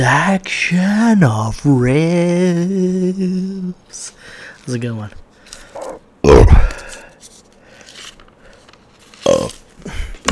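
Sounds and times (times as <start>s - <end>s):
speech: 0.0s - 5.2s
mouth noises: 5.6s - 7.0s
burp into a microphone: 5.8s - 6.8s, 9.2s - 9.6s.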